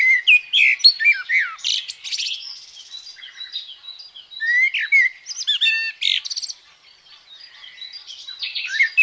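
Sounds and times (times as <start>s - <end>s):
common blackbird singing slurred phrases and squeaky twitters: 0.0s - 9.0s.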